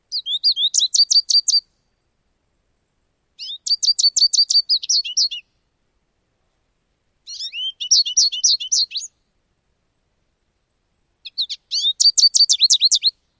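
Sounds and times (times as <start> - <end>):
brief territorial bird songs in summer: 0.0 - 2.1, 3.4 - 5.7, 7.2 - 9.4, 11.2 - 13.3.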